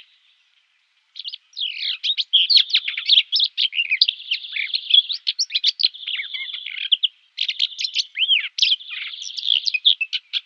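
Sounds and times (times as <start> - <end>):
Common whitethroat singing a busy warble of rough chattering notes: 0.0 - 10.4.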